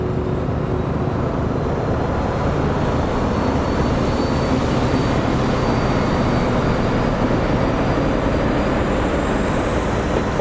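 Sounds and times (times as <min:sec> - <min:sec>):
locomotive hauling a line of rail wagons: 0:00.0 - 0:10.4
faint metallic whine: 0:02.8 - 0:10.4.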